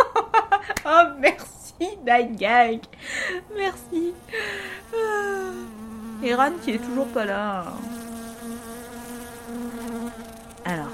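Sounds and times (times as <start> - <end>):
laughter: 0.0 - 0.9
speech: 1.2 - 8.0
fly buzzing: 3.2 - 10.9.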